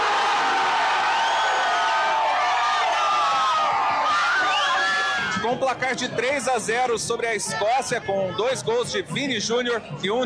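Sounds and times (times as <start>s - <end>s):
large crowd of football fans roaring and cheering after a goal: 0.0s - 5.6s
speech: 5.4s - 10.2s.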